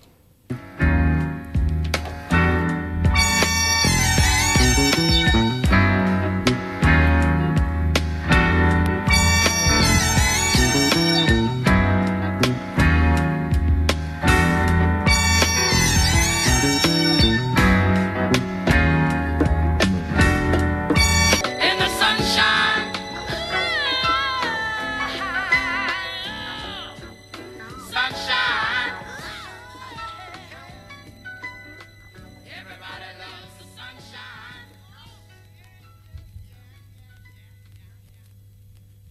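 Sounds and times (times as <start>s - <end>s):
soul-jazz song: 0.0s - 39.1s
warm bass groove: 0.5s - 31.3s.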